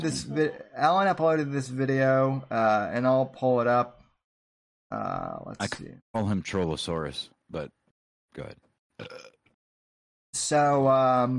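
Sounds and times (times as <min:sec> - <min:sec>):
speech: 0:00.0 - 0:04.0, 0:04.9 - 0:07.8, 0:08.4 - 0:09.3, 0:10.3 - 0:11.3
loud burp: 0:09.0 - 0:09.5.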